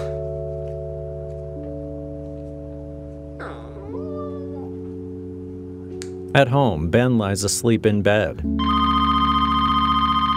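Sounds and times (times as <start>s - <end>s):
speech: 6.3s - 9.0s
telephone on a bedroom nightstand ringing with an electronic trill: 8.5s - 10.3s.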